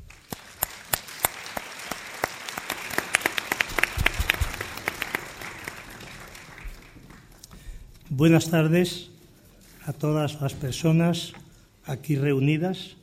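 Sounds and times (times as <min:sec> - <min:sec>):
room full of people applauding: 0:00.0 - 0:07.4
speech: 0:08.2 - 0:09.1, 0:09.9 - 0:13.0.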